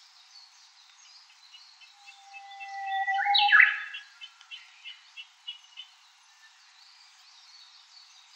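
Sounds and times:
Japanese bush warbler singing: 0.2 - 8.3
other birds chirping softly: 0.8 - 6.1.

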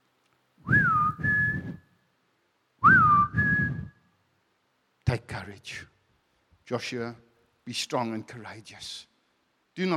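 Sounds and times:
person whistling a two-note call: 0.7 - 1.9, 2.8 - 4.1
speech: 5.4 - 6.0, 6.7 - 9.1, 9.8 - 9.9.

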